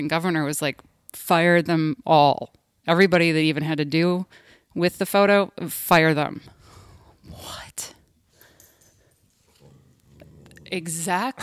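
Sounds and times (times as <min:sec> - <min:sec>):
speech: 0:00.0 - 0:06.6, 0:07.3 - 0:08.0, 0:10.7 - 0:11.4
dog grumbling: 0:09.5 - 0:11.4.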